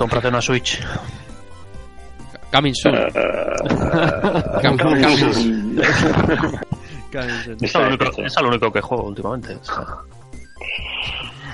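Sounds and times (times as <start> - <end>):
speech: 0.0 - 1.2, 2.5 - 10.1
person imitating a tiger's roar: 2.9 - 3.8
laughter: 3.1 - 8.4.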